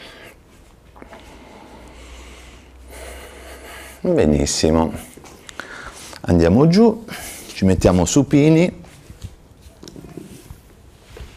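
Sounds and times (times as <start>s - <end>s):
heavy breathing after exertion while marching in place: 0.0s - 4.2s, 4.8s - 6.2s, 7.0s - 7.6s
speech: 4.0s - 5.1s, 6.3s - 8.8s.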